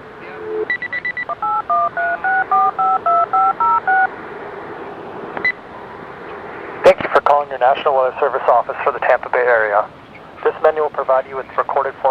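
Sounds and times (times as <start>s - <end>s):
short telephone beeps: 0.4s - 4.1s
steady telephone tone: 0.4s - 4.1s
speech: 7.6s - 12.0s.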